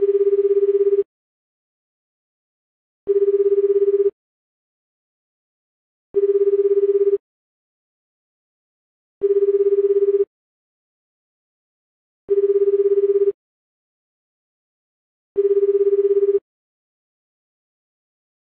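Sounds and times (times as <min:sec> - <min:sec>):
VoLTE ringback tone on a Samsung Galaxy S8: 0:00.0 - 0:01.1, 0:03.1 - 0:04.2, 0:06.2 - 0:07.2, 0:09.2 - 0:10.3, 0:12.3 - 0:13.4, 0:15.4 - 0:16.4.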